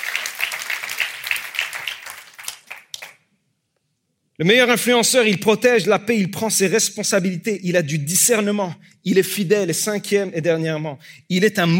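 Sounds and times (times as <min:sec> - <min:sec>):
audience applauding: 0:00.0 - 0:03.2
speech: 0:04.4 - 0:11.7.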